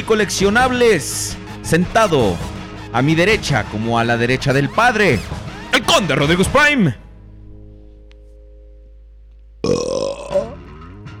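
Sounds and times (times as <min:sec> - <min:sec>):
speech: 0:00.0 - 0:07.0
loud drawn-out throaty burp: 0:09.6 - 0:11.0.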